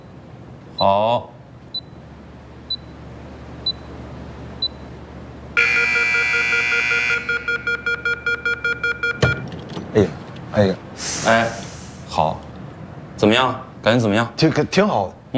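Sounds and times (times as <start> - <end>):
speech: 0.8 - 1.4, 10.0 - 11.6, 13.2 - 15.3
electronic timer beeping after a door is locked: 1.7 - 2.0, 2.7 - 3.0, 3.6 - 3.9, 4.6 - 4.9, 5.6 - 9.4
loud sustained electronic tone: 5.6 - 9.4
thump: 9.2 - 9.9.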